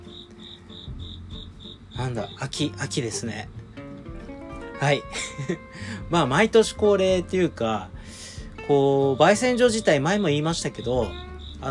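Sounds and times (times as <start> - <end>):
cricket chirping under the floor: 0.0 - 3.8, 9.3 - 11.6
speech: 2.0 - 3.6, 4.8 - 8.0, 8.7 - 11.6
laughter: 5.1 - 5.8.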